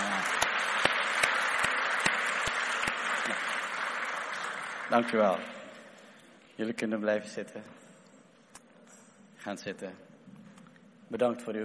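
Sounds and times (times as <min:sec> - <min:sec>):
church audience applauding: 0:00.0 - 0:05.8
speech: 0:04.9 - 0:05.6, 0:06.6 - 0:07.8, 0:09.4 - 0:10.1, 0:11.1 - 0:11.6.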